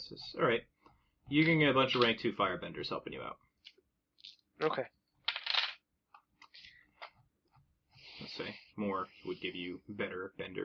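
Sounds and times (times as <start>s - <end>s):
speech: 0.1s - 0.7s, 1.3s - 3.4s, 4.6s - 5.0s, 8.2s - 10.6s
five dice thrown during a tabletop roleplaying game: 5.2s - 5.8s.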